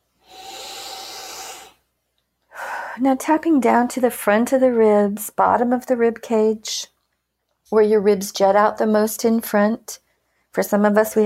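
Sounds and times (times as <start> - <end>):
deep breath taken during a tapping exercise: 0.2 - 1.9, 2.5 - 3.0
speech: 3.0 - 6.9, 7.7 - 10.0, 10.6 - 11.2.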